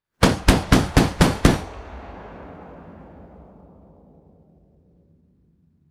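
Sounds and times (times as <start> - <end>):
distant rapid anti-aircraft cannon shots: 0.2 - 3.6.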